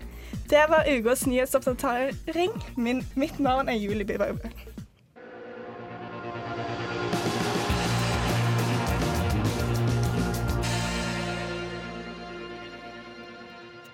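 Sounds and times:
speech: 0:00.5 - 0:04.8
dense loud song with distorted guitars or synths: 0:05.7 - 0:13.2.

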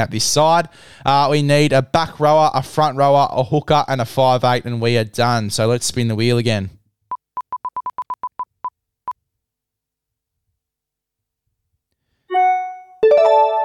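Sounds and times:
speech: 0:00.0 - 0:06.8
laptop notification chime: 0:12.3 - 0:13.6.

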